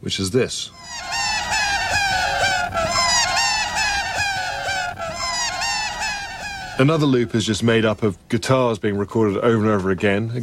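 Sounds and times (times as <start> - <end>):
speech: 0.0 - 1.2, 6.8 - 10.4
shrill high-pitched squawking cries: 0.7 - 7.8
sped-up laughter tape loop: 0.8 - 7.4.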